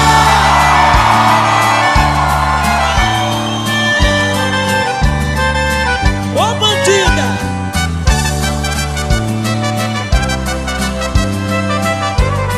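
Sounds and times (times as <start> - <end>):
audience shouting and whooping: 0.0 - 5.1
band music with a thumping bass line: 0.0 - 12.5.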